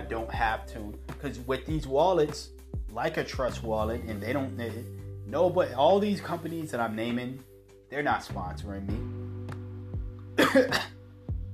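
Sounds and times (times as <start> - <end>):
speech: 0.1 - 9.2, 10.4 - 11.0
sharp cough: 10.4 - 11.0.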